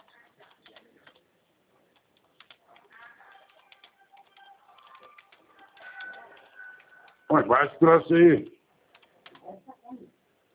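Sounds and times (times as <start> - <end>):
keyboard typing: 0.0 - 7.3, 8.8 - 9.5.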